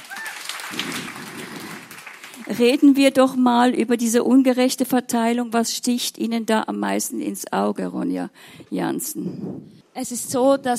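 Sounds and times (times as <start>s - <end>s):
studio audience applauding: 0.0s - 2.9s
speech: 0.7s - 1.0s, 2.4s - 10.7s.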